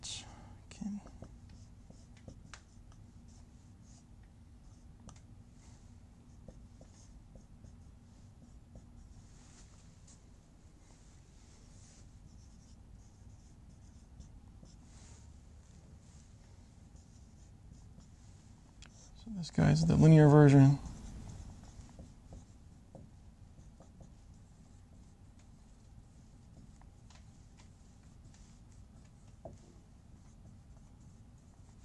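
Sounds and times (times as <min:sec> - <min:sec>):
low constant hum: 0:00.0 - 0:31.8
writing on a board: 0:01.0 - 0:05.3, 0:06.2 - 0:09.3, 0:12.1 - 0:15.1, 0:16.9 - 0:19.2, 0:20.0 - 0:31.8
speech: 0:19.3 - 0:20.9.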